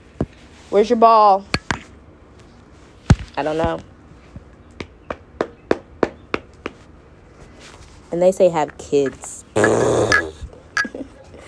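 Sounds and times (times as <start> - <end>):
speech: 0.7 - 1.5, 3.4 - 3.9, 8.1 - 9.9
dog growling: 9.6 - 10.4.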